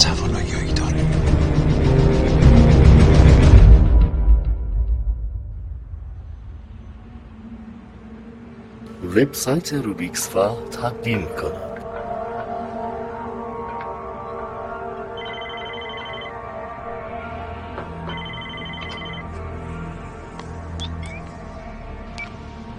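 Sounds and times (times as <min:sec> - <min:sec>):
steady tonal background: 0:00.0 - 0:22.7
speech: 0:09.2 - 0:11.7
electronic telephone ringing: 0:15.2 - 0:16.6, 0:18.0 - 0:19.3.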